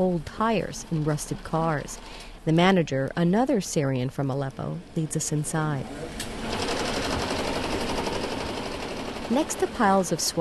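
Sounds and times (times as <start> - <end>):
speech: 0.0 - 6.6, 9.3 - 10.3
sewing machines running in a sweater factory: 6.3 - 10.3.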